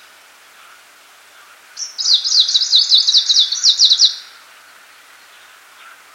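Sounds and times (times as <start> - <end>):
Icterine warbler song of rapid repeated high chirping notes: 1.8 - 6.0.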